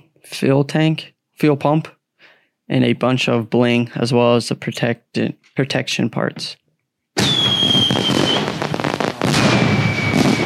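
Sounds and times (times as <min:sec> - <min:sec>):
speech: 0:00.2 - 0:02.0, 0:02.7 - 0:06.6
Fourth of July fireworks crackling bursts: 0:07.2 - 0:10.4.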